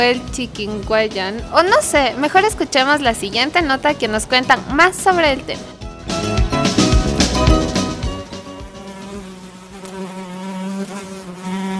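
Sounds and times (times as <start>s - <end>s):
speech: 0.0s - 5.7s
mosquito buzzing: 5.8s - 11.7s.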